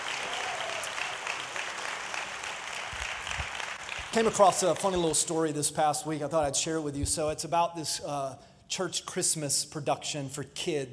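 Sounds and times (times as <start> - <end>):
audience applauding at a church service: 0.0 - 5.2
speech: 4.1 - 10.9.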